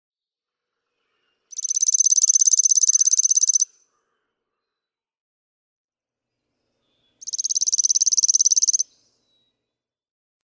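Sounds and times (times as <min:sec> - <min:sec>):
chipping sparrow singing dry trills: 0:01.5 - 0:03.6, 0:07.2 - 0:08.8.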